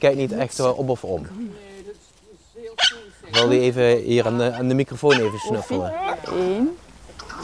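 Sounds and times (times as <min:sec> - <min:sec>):
speech: 0:00.0 - 0:01.4, 0:03.4 - 0:06.8
dog barking: 0:02.8 - 0:03.6, 0:04.2 - 0:06.3.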